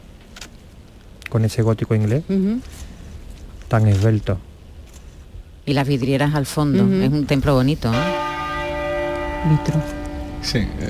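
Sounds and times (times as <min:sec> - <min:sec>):
speech: 0:01.3 - 0:02.9, 0:03.7 - 0:04.5, 0:05.6 - 0:08.3, 0:09.4 - 0:10.8
church bell tolling for a funeral: 0:07.9 - 0:10.8.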